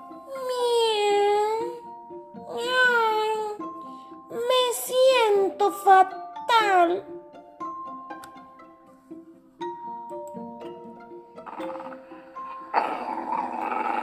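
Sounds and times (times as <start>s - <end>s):
light chiming music: 1.2s - 14.0s
speech: 5.7s - 7.3s
dog growling: 11.4s - 14.0s.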